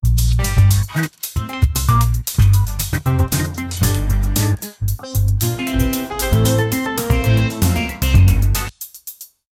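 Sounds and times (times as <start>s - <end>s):
montagem funk music: 0.0s - 9.2s.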